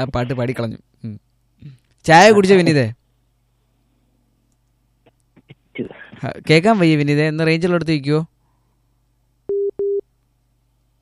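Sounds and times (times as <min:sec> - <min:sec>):
speech: 0:00.0 - 0:03.0, 0:05.8 - 0:08.3
faint low hum: 0:00.0 - 0:10.9
telephone busy tone after a phone-in call is cut off: 0:09.5 - 0:10.0.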